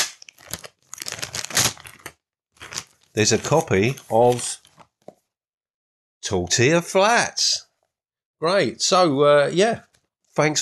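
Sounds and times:
paper envelope holding a book being torn open: 0:00.0 - 0:04.8
speech: 0:03.2 - 0:04.6, 0:06.3 - 0:07.6, 0:08.4 - 0:10.6.

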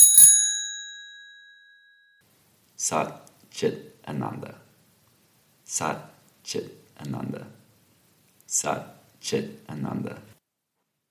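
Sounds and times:
small meditation bell ringing: 0:00.0 - 0:02.2
speech: 0:02.8 - 0:04.6, 0:05.7 - 0:07.6, 0:08.5 - 0:10.3.

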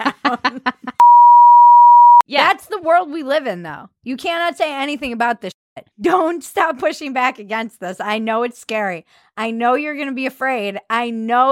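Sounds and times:
speech: 0:00.3 - 0:00.8, 0:02.9 - 0:11.5
steady high-pitched beep tone: 0:01.0 - 0:02.2.

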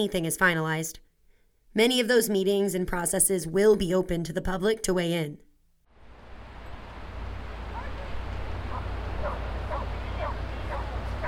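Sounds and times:
speech: 0:00.0 - 0:01.1, 0:01.8 - 0:05.4
wind on an open beach: 0:05.9 - 0:11.2
surf on an open beach: 0:06.0 - 0:11.2
several dogs barking and yipping at a dog beach: 0:07.5 - 0:11.2.

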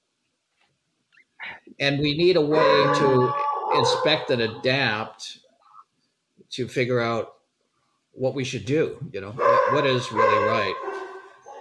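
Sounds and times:
speech: 0:01.8 - 0:05.4, 0:06.5 - 0:07.4, 0:08.2 - 0:11.0
dog barking and yelping: 0:02.5 - 0:04.8, 0:09.4 - 0:11.6.

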